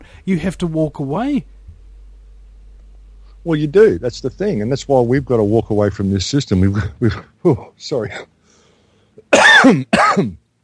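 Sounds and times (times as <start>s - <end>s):
speech: 0.2s - 1.6s, 3.4s - 8.3s, 9.6s - 10.4s
harsh chesty coughs: 9.3s - 10.4s.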